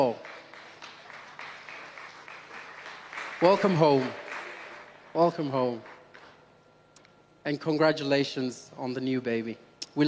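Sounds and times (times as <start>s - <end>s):
crowd clapping for a woman: 0.0s - 5.9s
speech: 3.4s - 4.2s, 5.2s - 5.9s, 7.4s - 10.0s.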